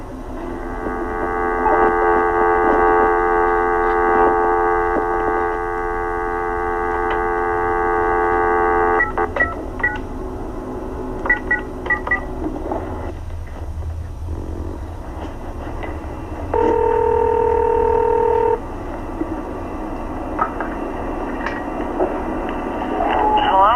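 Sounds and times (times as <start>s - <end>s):
low rumble: 0.0s - 23.7s
telephone dial tone: 0.5s - 10.0s, 16.6s - 18.6s.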